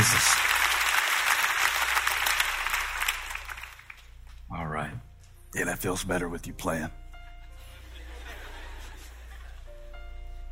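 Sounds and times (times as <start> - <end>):
standing audience clapping their hands: 0.0 - 4.1
speech: 5.6 - 7.0
laughter: 7.4 - 10.0.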